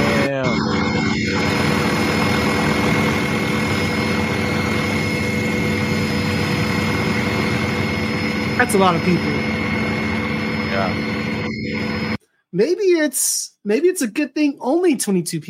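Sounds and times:
airplane from Paris engine drone: 0.0s - 12.2s
speech: 8.6s - 9.5s, 12.5s - 15.4s.

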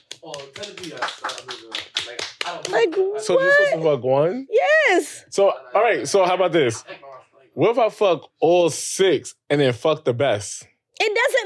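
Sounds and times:
several hands clapping: 0.0s - 3.6s
speech: 0.2s - 7.0s, 7.6s - 11.4s.

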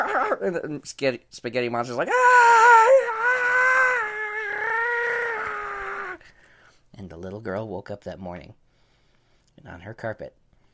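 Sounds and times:
person's voice imitating a dog whimpering: 0.0s - 0.6s, 2.3s - 6.2s
speech: 0.1s - 3.0s, 7.0s - 8.6s, 9.6s - 10.4s.

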